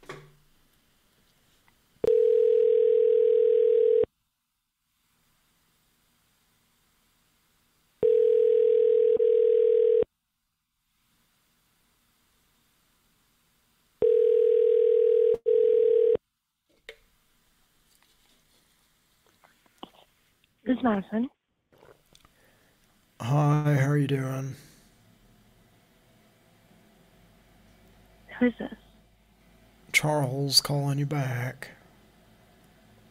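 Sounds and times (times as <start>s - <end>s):
long steady electronic telephone line beeps: 2.0s - 4.1s, 8.0s - 10.0s, 14.0s - 16.2s
faint handling noises: 17.8s - 20.6s
speech: 20.8s - 21.4s, 23.2s - 24.7s, 28.4s - 28.8s, 30.0s - 31.8s.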